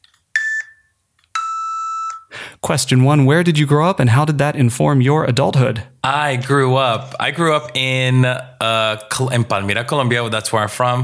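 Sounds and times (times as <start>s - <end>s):
electronic timer beeps: 0.4s - 2.3s
speech: 2.7s - 11.0s.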